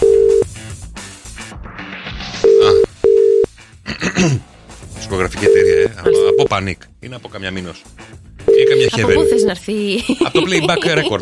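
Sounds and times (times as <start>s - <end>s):
telephone tone after a call is hung up: 0.0s - 0.4s, 2.4s - 3.5s, 5.5s - 6.5s, 8.5s - 9.5s
speech: 4.2s - 4.5s, 5.1s - 8.0s, 8.6s - 11.2s
laughter: 9.9s - 11.2s.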